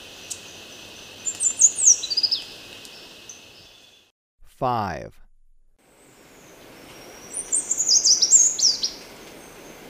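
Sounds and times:
Choco Vireo twittering song recorded in Ecuador: 0.1 - 4.1, 6.0 - 9.8
speech: 4.6 - 5.2.

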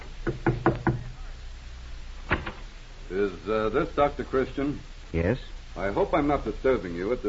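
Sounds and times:
faint hiss: 0.0 - 7.2
knocking on a door: 0.2 - 1.1
speech: 3.1 - 7.2.

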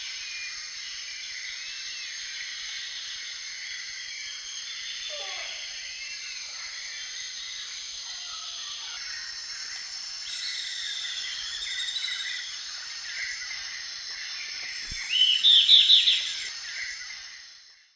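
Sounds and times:
Myiopagis flavivertex call in South American eastern lowlands: 8.0 - 17.4.

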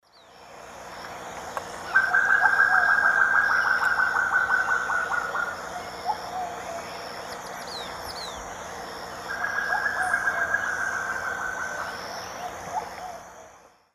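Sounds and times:
Chamaeza nobilis alarm calls in South American Eastern Lowlands: 1.8 - 8.5, 9.1 - 13.2.

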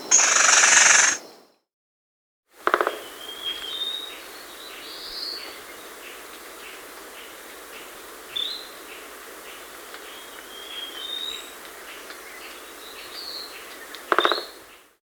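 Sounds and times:
Crimson-bellied woodpecker Campephilus haematogaster in the Andes of South America: 0.1 - 1.2, 2.7 - 3.8, 13.6 - 14.8.

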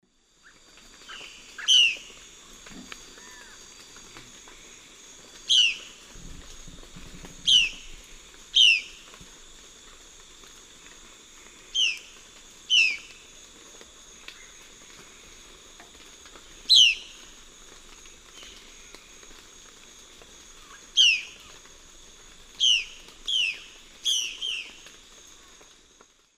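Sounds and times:
Cyanocorax violaceus calls in the Eastern Lowlands of South America: 1.1 - 2.1, 7.5 - 7.8, 8.6 - 9.0, 12.7 - 13.1, 20.6 - 21.5, 22.6 - 24.7.

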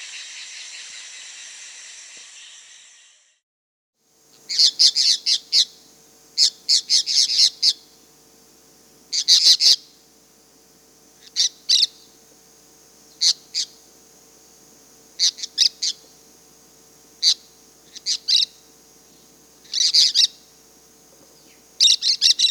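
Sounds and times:
Cobalt-winged Parakeet Brotogeris cyanoptera calling in Peru: 4.3 - 10.1, 10.9 - 12.3, 12.9 - 16.3, 17.1 - 18.7, 19.6 - 20.7, 21.3 - 22.5.

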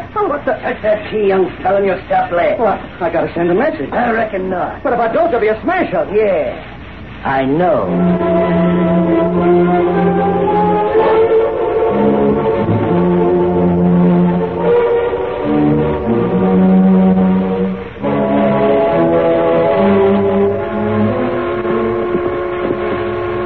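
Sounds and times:
speech: 0.2 - 10.2
eastbound train whistle blowing in chord-like blasts: 7.8 - 23.4.

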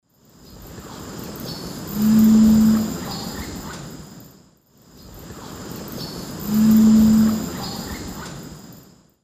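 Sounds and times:
Cephalopterus ornatus singing in the South American Eastern Lowlands: 1.4 - 3.6, 6.0 - 8.2.

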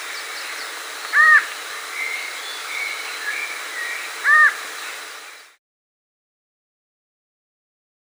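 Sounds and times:
variable antshrike Thamnophilus caerulescens nasal calls in the Andes: 0.0 - 5.5
steady hiss: 0.0 - 5.6.

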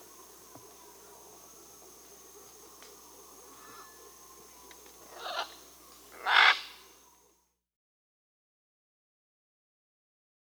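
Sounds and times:
Ara macao scarlet macaw squawking in Peru: 5.0 - 6.8.

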